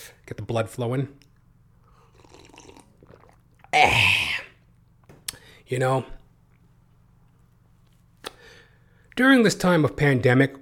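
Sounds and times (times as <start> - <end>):
speech: 0.3 - 1.3, 5.7 - 6.2, 9.2 - 10.6
stand-up comedian slurping sip of water: 1.9 - 4.5.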